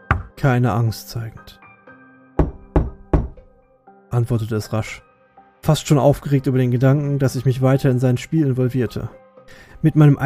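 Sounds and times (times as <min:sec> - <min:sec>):
knocking on hard drywall: 0:00.0 - 0:00.4, 0:02.4 - 0:03.4
speech: 0:00.4 - 0:01.6, 0:04.1 - 0:10.2.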